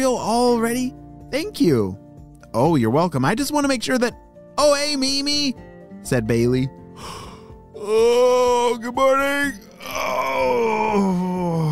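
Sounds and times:
speech: 0.0s - 7.2s, 7.8s - 11.2s
big drawn-out voiced yawn: 7.0s - 8.7s, 9.6s - 11.7s.

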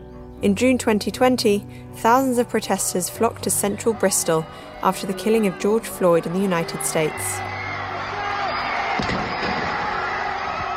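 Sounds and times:
speech: 0.4s - 7.5s
large outdoor protest crowd roaring and cheering: 3.2s - 10.7s.

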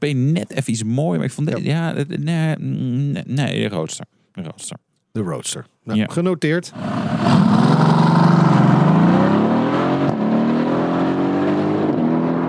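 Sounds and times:
speech: 0.0s - 7.6s
roadster car engine revving as it accelerates: 6.8s - 12.4s.

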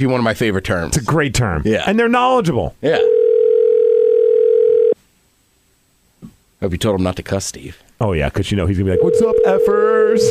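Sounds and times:
speech: 0.0s - 3.2s, 6.6s - 10.2s
outgoing phone call ringing tone: 3.0s - 5.0s, 8.9s - 10.2s.

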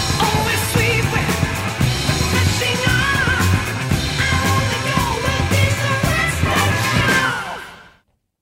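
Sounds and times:
pounding rock drums: 0.0s - 7.6s
distorted rock guitar: 0.0s - 8.0s
loud dense rock track: 0.0s - 8.0s
high wailing vocal refrain: 2.6s - 8.0s.

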